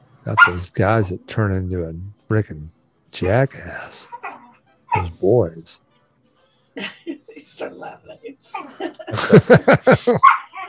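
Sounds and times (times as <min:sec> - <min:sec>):
speech: 0:00.2 - 0:04.2, 0:04.9 - 0:05.8, 0:06.8 - 0:10.4
dogs barking: 0:00.3 - 0:00.7, 0:04.1 - 0:05.2, 0:10.1 - 0:10.6
dog yip: 0:00.4 - 0:00.6, 0:04.1 - 0:05.1, 0:10.2 - 0:10.6
laughter: 0:08.2 - 0:10.3.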